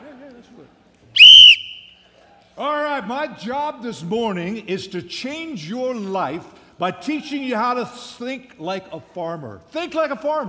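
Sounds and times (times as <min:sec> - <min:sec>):
shrill whistle blast blown to start a timer: 0:01.2 - 0:02.0
speech: 0:02.6 - 0:10.4.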